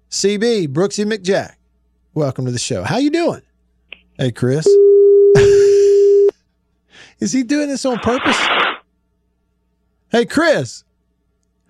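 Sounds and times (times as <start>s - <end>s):
speech: 0.1s - 1.6s, 2.2s - 3.5s, 4.2s - 5.7s, 7.0s - 8.7s, 10.1s - 10.9s
droning telephone line tone: 4.6s - 6.3s
laughter: 5.4s - 6.0s
man breathing heavily into a telephone mouthpiece: 6.9s - 7.2s.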